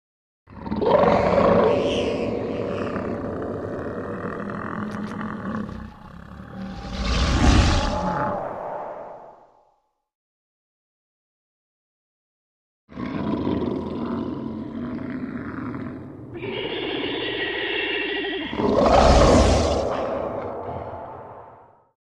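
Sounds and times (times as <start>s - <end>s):
monster making sounds: 0.6s - 8.9s, 13.5s - 21.9s.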